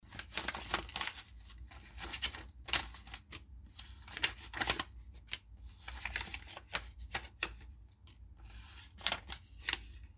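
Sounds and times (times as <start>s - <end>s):
single dollar banknote rustling in hands: 0.0s - 10.1s.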